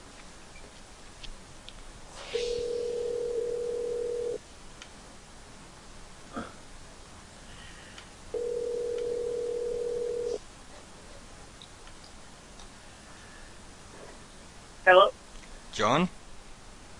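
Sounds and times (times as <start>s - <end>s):
faint hiss: 0.0s - 16.9s
telephone ringback tone heard through a phone line: 2.4s - 4.4s, 8.3s - 10.4s
speech: 14.9s - 15.2s, 15.8s - 16.2s.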